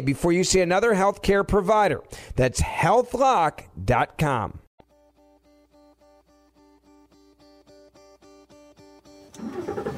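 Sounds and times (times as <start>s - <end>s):
speech: 0.0s - 4.6s
car engine cranking, starting and revving while driving from El Paso into Mexico: 9.3s - 9.9s.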